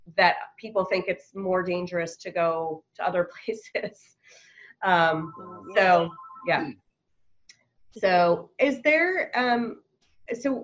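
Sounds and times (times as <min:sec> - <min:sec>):
speech: 0:00.2 - 0:06.8, 0:07.9 - 0:10.6
steady beeping tone: 0:04.9 - 0:06.8
phone ringtone playing a bright melodic tune: 0:05.0 - 0:06.7.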